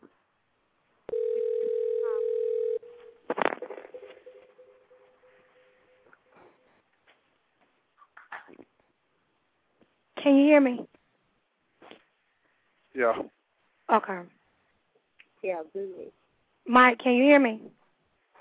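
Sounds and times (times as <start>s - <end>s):
telephone dial tone while dialing a house phone: 1.1s - 3.1s
speech: 10.3s - 10.9s, 13.0s - 13.3s, 13.9s - 14.4s, 15.4s - 17.8s.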